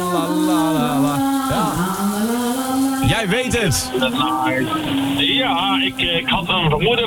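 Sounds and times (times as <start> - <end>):
woman singing a song loudly: 0.0 - 5.2
shower water running in a shower cabin: 0.0 - 7.0
speech: 3.2 - 7.0.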